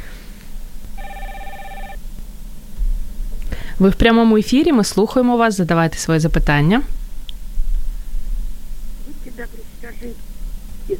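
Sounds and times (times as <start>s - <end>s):
low rumble: 0.0s - 10.9s
telephone ringing with a bright electronic trill: 1.0s - 2.0s
speech: 3.8s - 7.0s.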